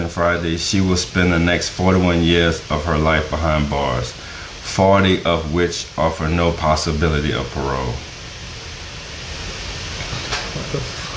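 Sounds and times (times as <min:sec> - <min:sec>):
water boiling: 0:00.0 - 0:11.1
speech: 0:00.1 - 0:08.1, 0:10.7 - 0:11.0.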